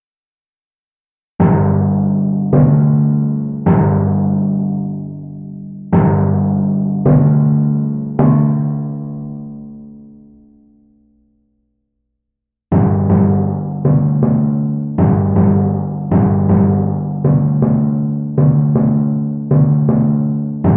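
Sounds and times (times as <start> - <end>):
carousel timpani: 1.4 - 9.6, 12.7 - 20.7.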